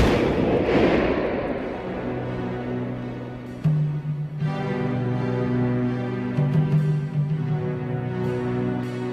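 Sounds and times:
loud explosion: 0:00.0 - 0:03.3
steady low droning tone: 0:00.0 - 0:09.0.

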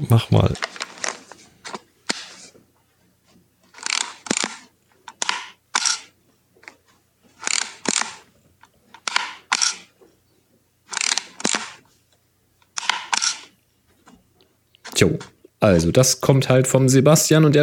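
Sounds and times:
speech: 0:00.0 - 0:00.8, 0:15.0 - 0:17.6
Yashica Y35 retro-style digital camera shutter clicks: 0:03.8 - 0:06.1, 0:07.4 - 0:08.2, 0:09.0 - 0:09.9, 0:10.9 - 0:11.8, 0:12.7 - 0:13.5.

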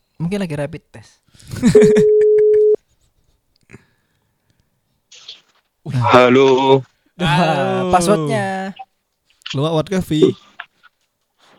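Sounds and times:
speech: 0:00.2 - 0:02.2, 0:06.0 - 0:08.8, 0:09.5 - 0:10.5
unanswered telephone call ringback tone: 0:01.8 - 0:02.8.

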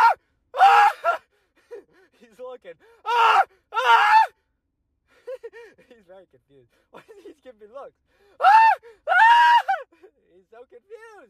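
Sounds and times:
person screaming loudly: 0:00.0 - 0:01.2, 0:03.0 - 0:04.3, 0:08.4 - 0:09.8
speech: 0:02.6 - 0:03.4, 0:06.2 - 0:08.9, 0:10.4 - 0:11.2.

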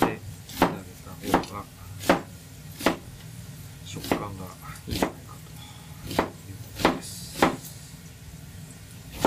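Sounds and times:
knife slicing an onion along the grain: 0:00.0 - 0:03.1, 0:04.0 - 0:05.2, 0:06.0 - 0:07.6.

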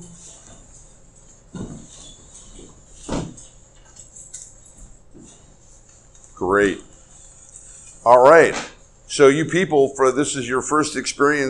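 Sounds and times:
chairs being shuffled and turned to face the front: 0:01.4 - 0:05.5
speech: 0:06.4 - 0:06.9, 0:08.0 - 0:11.4.

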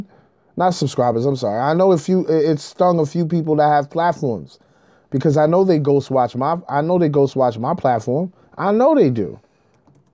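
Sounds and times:
speech: 0:00.0 - 0:09.4
typing on a computer keyboard: 0:09.7 - 0:10.1.

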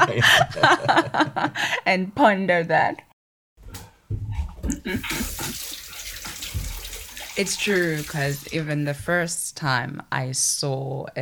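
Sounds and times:
laughter: 0:00.0 - 0:01.6
speech: 0:00.1 - 0:03.1, 0:04.6 - 0:05.6, 0:07.4 - 0:11.2
water running from a tap into a glass: 0:04.9 - 0:08.8.

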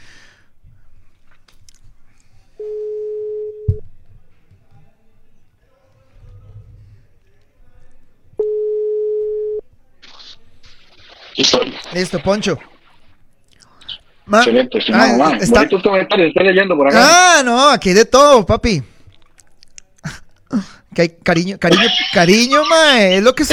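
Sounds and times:
telephone ringback tone over a phone line: 0:02.6 - 0:03.8, 0:08.4 - 0:09.6
speech: 0:11.9 - 0:12.8, 0:14.3 - 0:18.9, 0:21.0 - 0:23.5
laughter: 0:21.7 - 0:23.5.

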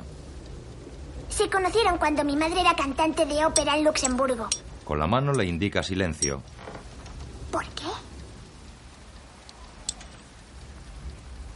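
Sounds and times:
rain falling outdoors: 0:00.0 - 0:11.5
sharp tick: 0:00.1 - 0:05.6, 0:08.1 - 0:11.5
speech: 0:01.3 - 0:06.6.

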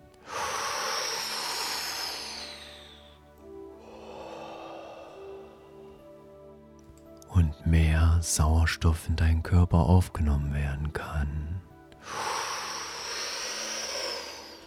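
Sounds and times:
deep breathing through the mouth in a guided breathing exercise: 0:00.2 - 0:06.5, 0:12.0 - 0:14.6
speech: 0:07.4 - 0:12.3.

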